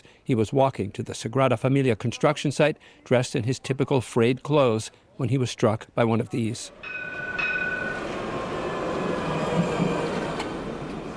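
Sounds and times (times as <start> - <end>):
speech: 0.3 - 7.2
thin metallic squeal of tram: 6.7 - 10.2
old tram rumbling along its rails: 6.7 - 11.1.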